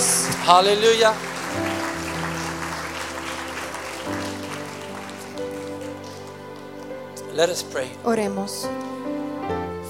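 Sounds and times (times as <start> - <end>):
audience clapping: 0.0 - 7.6
sustained organ or keyboard chords: 0.0 - 9.8
speech: 0.5 - 1.6, 7.4 - 9.2.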